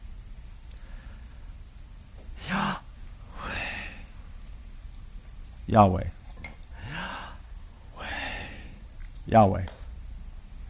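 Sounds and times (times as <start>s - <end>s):
sharp inhale: 2.4s - 4.1s, 6.8s - 7.4s, 8.0s - 8.8s
longer softer exhale: 2.4s - 4.2s, 6.8s - 7.4s, 8.0s - 8.8s
speech: 5.7s - 6.2s, 9.3s - 9.8s.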